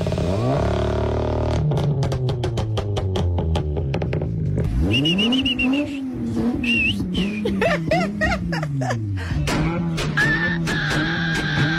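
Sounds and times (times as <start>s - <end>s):
car engine revving: 0.0s - 11.7s
laughter: 7.2s - 9.7s.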